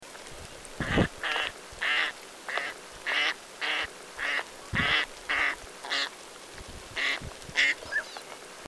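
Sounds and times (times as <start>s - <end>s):
northern pintail Anas acuta calling: 0.8s - 6.2s, 7.0s - 8.3s.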